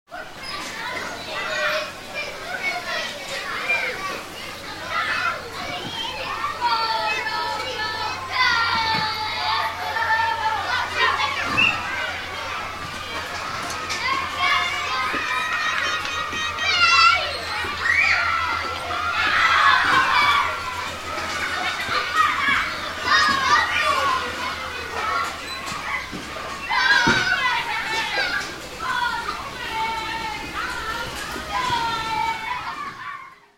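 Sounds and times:
children playing in school playground: 0.1 - 33.5.

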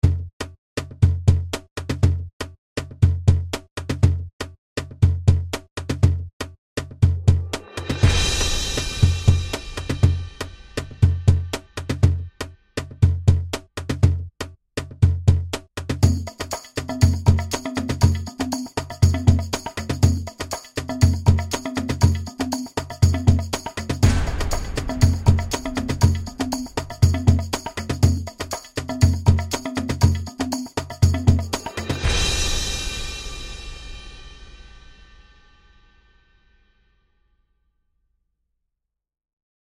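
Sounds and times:
tribal drum sequence: 0.0 - 35.3
percussion hits: 6.8 - 36.1
cymbal swells: 7.7 - 11.4, 31.8 - 36.3.

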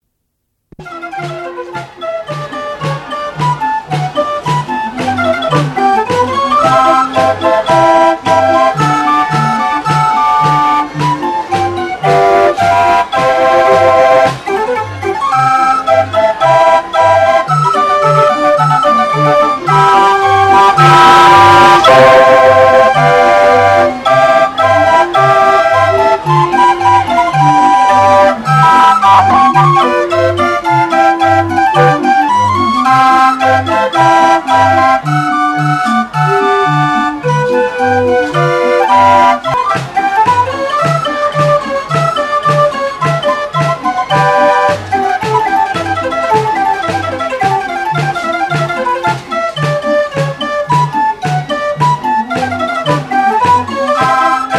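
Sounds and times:
steam driven mechanical fairground organ music: 0.8 - 54.5.

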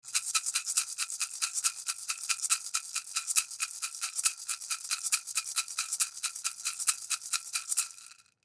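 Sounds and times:
maraca shaking fast: 0.0 - 8.4.

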